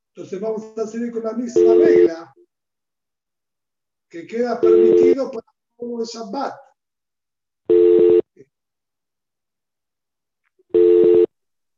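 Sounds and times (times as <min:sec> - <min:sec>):
speech: 0:00.2 - 0:02.4, 0:04.1 - 0:06.6
electronic telephone tones: 0:01.5 - 0:02.1, 0:04.6 - 0:05.2, 0:07.7 - 0:08.2, 0:10.7 - 0:11.3.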